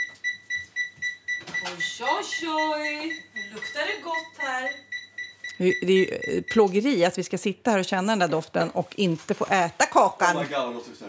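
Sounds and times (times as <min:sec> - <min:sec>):
kitchen timer alarm beeping: 0:00.0 - 0:07.2
speech: 0:01.6 - 0:04.9, 0:05.6 - 0:11.0.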